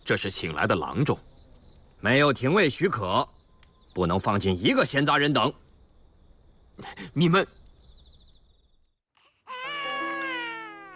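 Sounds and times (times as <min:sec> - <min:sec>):
speech: 0:00.1 - 0:01.4, 0:02.0 - 0:03.4, 0:04.0 - 0:05.6, 0:06.8 - 0:07.6
sick infant crying: 0:09.2 - 0:10.9.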